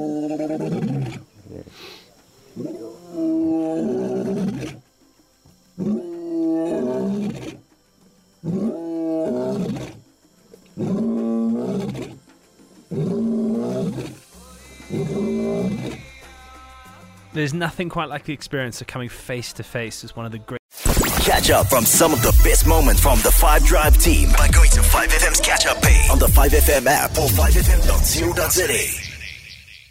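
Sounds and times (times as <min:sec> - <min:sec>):
speech: 0:00.0 - 0:01.3, 0:17.4 - 0:20.6, 0:21.3 - 0:29.0
lion roaring: 0:00.0 - 0:01.7, 0:02.6 - 0:04.9, 0:05.8 - 0:07.6, 0:08.4 - 0:10.1, 0:10.8 - 0:12.2, 0:12.9 - 0:14.3, 0:14.9 - 0:16.2.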